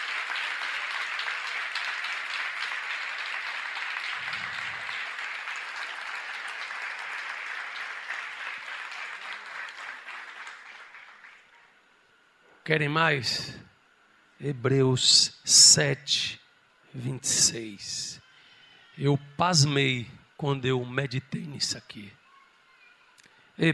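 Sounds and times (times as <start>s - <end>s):
crowd applauding: 0.0s - 11.7s
speech: 12.7s - 13.6s, 14.4s - 16.4s, 17.0s - 18.2s, 19.0s - 22.2s, 23.6s - 23.7s.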